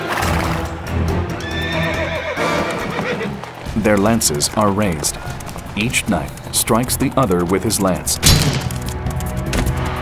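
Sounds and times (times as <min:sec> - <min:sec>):
horses galloping: 0:00.0 - 0:09.9
horse neighing: 0:01.4 - 0:03.5
speech: 0:03.8 - 0:08.7.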